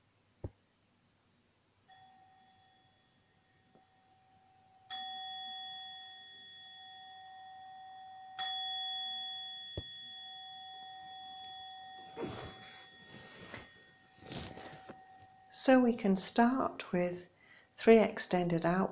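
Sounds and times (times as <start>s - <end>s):
meditation bell struck to begin a meditation: 1.9s - 16.0s
soft rustling: 12.0s - 15.5s
speech: 15.6s - 18.8s.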